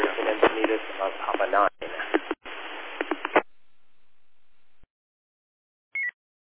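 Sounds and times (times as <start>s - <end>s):
garbled static from two radio transmissions colliding on the same frequency: 0.0s - 3.5s
sharp pops: 0.0s - 3.5s
short chirping tone: 6.0s - 6.2s.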